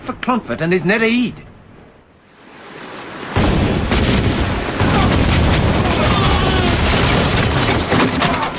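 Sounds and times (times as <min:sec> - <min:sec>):
speech: 0:00.2 - 0:01.5
warship full cannon broadside firing into a fortress: 0:03.4 - 0:08.0.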